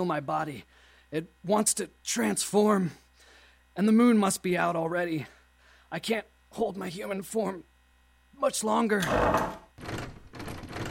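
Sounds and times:
speech: 0.0s - 3.0s, 3.8s - 7.7s, 8.4s - 9.6s
library door with a sticking handle rattling and thumping in its frame: 9.0s - 10.8s.

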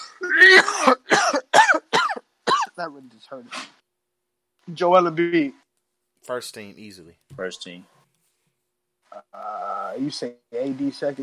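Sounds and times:
person coughing hoarsely: 0.0s - 2.8s
speech: 0.8s - 1.3s, 3.0s - 3.8s, 4.7s - 5.6s, 6.2s - 8.0s, 9.1s - 11.2s.

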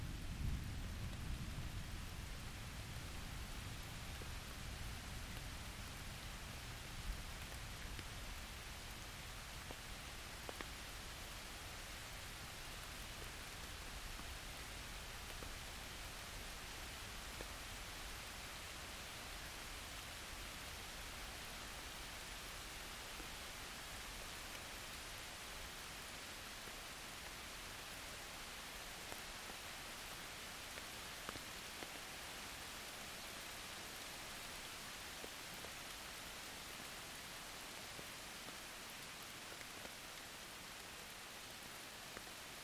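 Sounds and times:
soft rain in the Surrey Hills: 0.0s - 42.6s.

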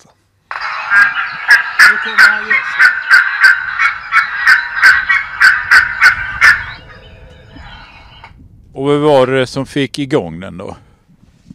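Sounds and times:
gull alarm call: 0.5s - 8.3s
speech: 2.0s - 6.6s, 8.8s - 10.9s.

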